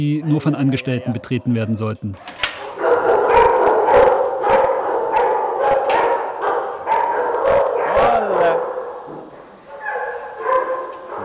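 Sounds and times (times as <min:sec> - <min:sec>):
speech: 0:00.0 - 0:02.4
crowd of dogs barking in kennels: 0:02.6 - 0:11.2.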